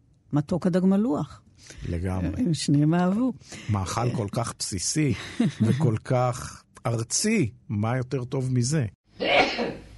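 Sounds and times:
speech: 0:00.3 - 0:09.3
laughter: 0:05.1 - 0:06.0
sneeze: 0:09.2 - 0:09.9.

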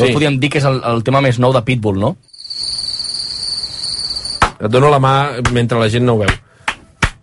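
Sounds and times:
speech: 0:00.0 - 0:02.3, 0:04.6 - 0:06.4
crickets chirping: 0:02.3 - 0:04.5.

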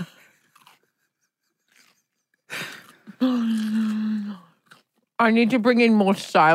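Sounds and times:
crunchy carrot chewing into a microphone: 0:00.0 - 0:05.2
speech: 0:03.2 - 0:03.8, 0:05.2 - 0:06.5.

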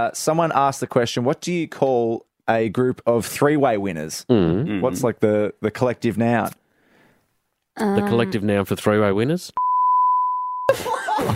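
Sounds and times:
speech: 0:00.0 - 0:06.6, 0:07.8 - 0:09.6, 0:10.7 - 0:11.3
censor bleep: 0:09.6 - 0:10.7.

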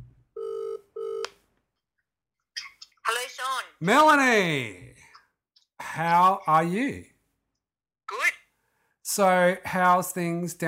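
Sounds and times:
electronic ring tones of an outgoing phone call: 0:00.4 - 0:01.3
speech: 0:03.4 - 0:04.8, 0:06.0 - 0:07.1, 0:09.1 - 0:10.6.

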